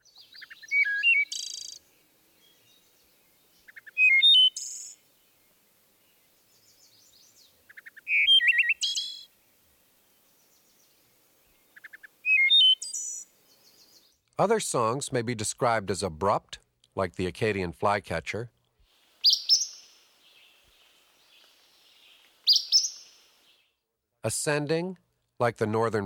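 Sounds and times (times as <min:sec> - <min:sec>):
wood thrush singing flute-like phrases with trills: 0:00.0 - 0:01.8, 0:03.6 - 0:05.0, 0:06.5 - 0:09.3, 0:12.2 - 0:14.0, 0:21.4 - 0:23.6
speech: 0:14.4 - 0:18.6, 0:24.3 - 0:26.0.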